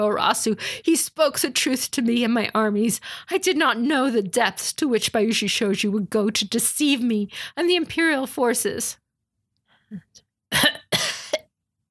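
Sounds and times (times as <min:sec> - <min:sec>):
speech: 0:00.0 - 0:09.0, 0:09.9 - 0:10.7
harsh raspy hacking cough: 0:10.5 - 0:11.5.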